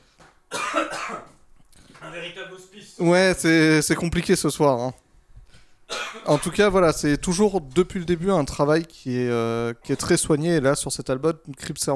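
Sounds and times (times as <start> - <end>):
person coughing: 0.5 - 1.4, 5.9 - 6.7
speech: 0.8 - 1.3, 2.0 - 5.0, 6.2 - 11.9.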